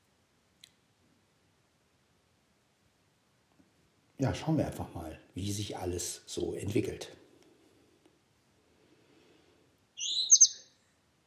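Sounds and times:
speech: 4.2 - 7.2
small bird chirping at dawn: 10.0 - 10.9.

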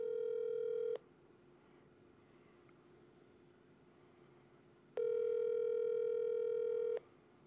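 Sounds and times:
ringback tone of an outgoing phone call: 0.0 - 1.0, 5.0 - 7.0.

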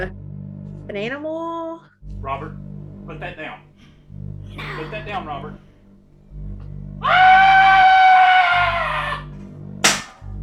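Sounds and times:
speech: 0.0 - 0.2, 0.9 - 5.7, 6.4 - 7.3
low rumble: 2.0 - 10.4
laughter: 4.5 - 5.6
stock movie scream: 7.0 - 9.4.

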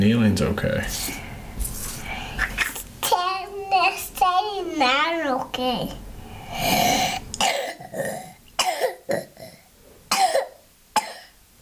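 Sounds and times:
speech: 0.0 - 1.2, 4.8 - 8.1
child coughing: 2.4 - 3.3, 6.8 - 11.4.

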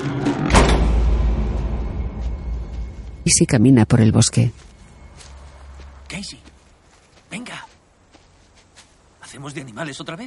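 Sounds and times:
door shutting with a sharp loud thud: 0.4 - 1.8
speech: 3.3 - 4.7, 9.4 - 10.2.

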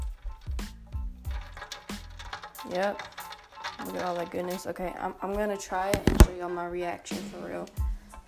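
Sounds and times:
straw stirring ice in an overflowing iced coffee cup: 0.0 - 6.6
speech: 2.6 - 3.2, 3.8 - 7.8.

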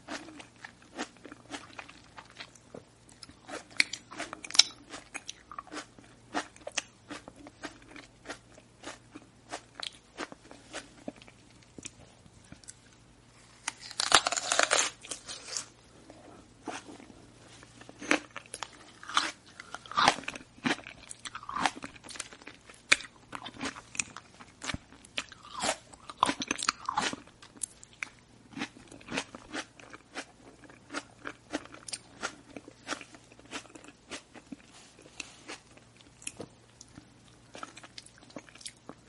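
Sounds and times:
faint low hum: 0.0 - 39.0
wet chewing and crunching with smacking: 0.0 - 39.0.

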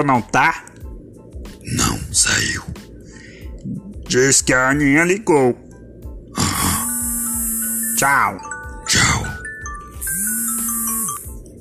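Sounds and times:
speech: 0.0 - 0.7, 1.6 - 2.9, 3.6 - 5.7, 8.0 - 9.4
electronic alarm clock ringing: 6.8 - 11.4
tinkling chime-like notes: 8.0 - 11.4.

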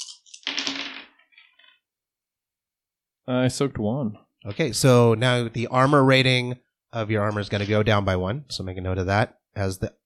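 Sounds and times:
six dice clattering and tumbling across a hard surface: 0.0 - 1.8
speech: 3.3 - 10.0.

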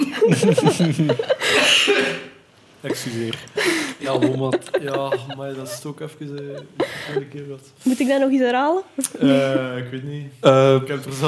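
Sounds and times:
laughter: 0.0 - 2.1, 2.9 - 7.6
speech: 0.2 - 11.2
person coughing after choking: 1.4 - 2.4.

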